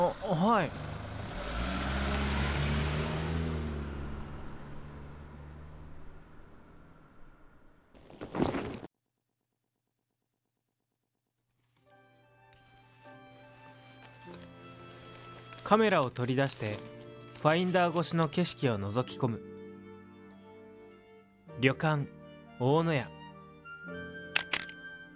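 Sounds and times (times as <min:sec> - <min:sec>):
car engine running as the car pulls away to be parked: 0:00.0 - 0:07.9
speech: 0:00.5 - 0:00.9, 0:15.7 - 0:19.5, 0:21.6 - 0:23.2
soft music: 0:11.9 - 0:25.1.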